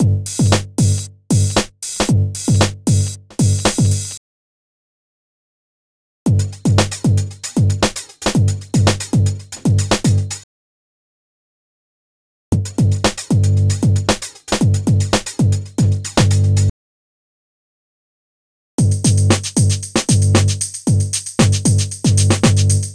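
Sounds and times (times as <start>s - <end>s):
breakbeat drums: 0.0s - 4.2s, 6.3s - 10.4s, 12.6s - 16.7s, 18.8s - 22.9s.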